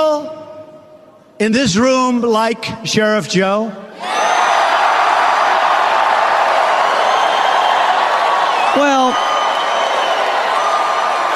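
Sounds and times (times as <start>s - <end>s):
speech: 1.4s - 4.3s, 8.8s - 9.2s
large crowd in a room applauding and cheering: 4.0s - 11.3s.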